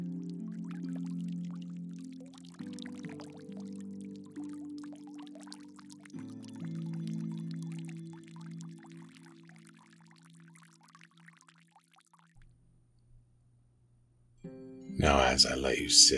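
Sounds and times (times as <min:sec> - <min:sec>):
babbling brook in a forest: 0:00.1 - 0:12.2
speech: 0:15.3 - 0:16.1.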